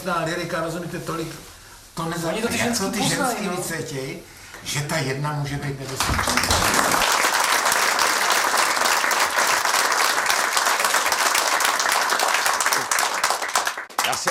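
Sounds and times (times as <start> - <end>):
speech: 0.0 - 7.0
audience applause: 6.0 - 14.2.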